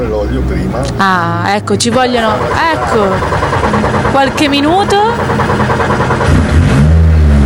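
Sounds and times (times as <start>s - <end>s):
racing car engine starting and revving: 0.0s - 7.4s
speech: 0.3s - 6.4s.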